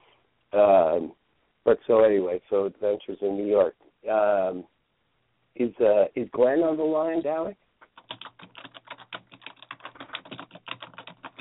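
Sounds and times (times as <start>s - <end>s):
speech: 0.5s - 4.7s, 5.6s - 7.6s
furious typing on a computer keyboard: 7.8s - 11.4s.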